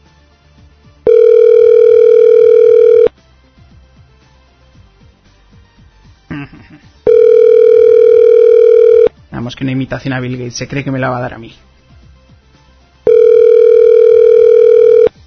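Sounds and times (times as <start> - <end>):
loud steady telephone tone of an outgoing call: 1.1 - 3.1, 7.1 - 9.1, 13.0 - 15.1
speech: 9.6 - 11.7.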